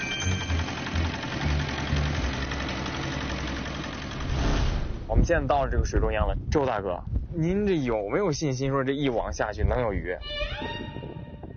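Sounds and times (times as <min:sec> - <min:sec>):
fishing boat engine running: 0:00.0 - 0:05.0
speech: 0:05.2 - 0:11.0.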